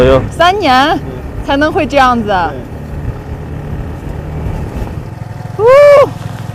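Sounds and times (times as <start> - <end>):
speech: 0.0 - 2.7, 5.6 - 6.2
vehicle engine rumbling while driving on a newly built asphalt road: 0.0 - 6.5.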